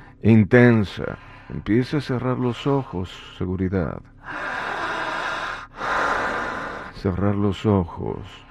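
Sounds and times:
speech: 0.2 - 4.6, 7.0 - 8.5
deep forceful breathing drawing in air: 1.1 - 1.7, 4.2 - 7.2, 8.4 - 8.5.

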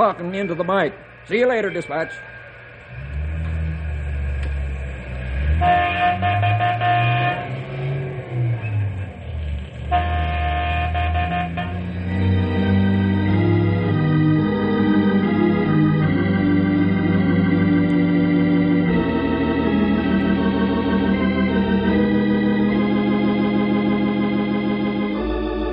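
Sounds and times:
speech: 0.0 - 2.4, 5.6 - 6.4
train rumbling on railway tracks: 0.0 - 15.5, 16.5 - 25.7
long train horn blasts: 5.4 - 9.0, 9.8 - 13.2.

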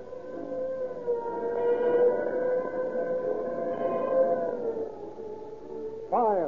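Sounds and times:
police car siren wailing: 0.1 - 6.1.

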